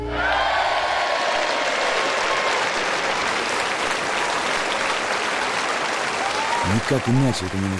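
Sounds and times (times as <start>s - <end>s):
large audience applauding enthusiastically: 0.1s - 7.7s
speech: 6.8s - 7.7s.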